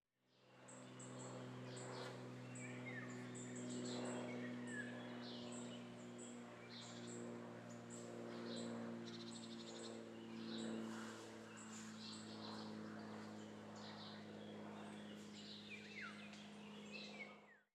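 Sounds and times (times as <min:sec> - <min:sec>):
airplane over a very old quarry: 0:00.2 - 0:17.7
birds in a very old quarry: 0:00.6 - 0:17.6.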